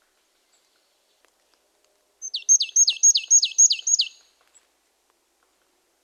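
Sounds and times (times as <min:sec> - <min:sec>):
marsh tit Poecile palustris calling: 0:02.2 - 0:04.3.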